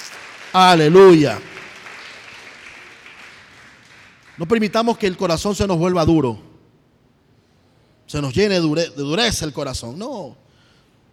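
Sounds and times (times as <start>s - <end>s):
church congregation applauding during a service: 0.0s - 5.2s
speech: 0.5s - 1.5s, 4.4s - 6.5s, 8.1s - 10.4s.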